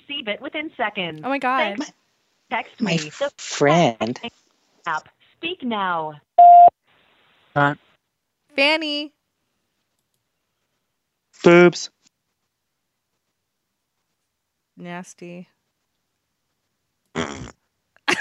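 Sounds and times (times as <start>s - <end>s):
speech: 0.2s - 6.5s, 7.6s - 7.8s, 8.6s - 9.2s, 11.4s - 12.0s, 14.8s - 15.5s
voicemail recording tone beep: 6.4s - 6.7s
fart: 17.1s - 17.6s.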